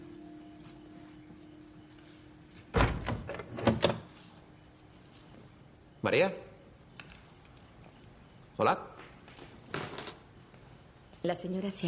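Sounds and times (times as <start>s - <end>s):
house door opening with a thump: 2.7s - 4.0s
speech: 6.0s - 6.5s, 8.6s - 8.9s, 11.2s - 11.8s.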